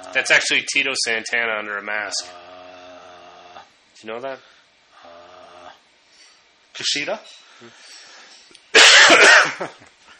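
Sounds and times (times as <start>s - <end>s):
speech: 0.1s - 2.5s, 4.0s - 4.5s, 6.8s - 7.9s, 9.1s - 10.0s
person sneezing: 8.8s - 9.7s.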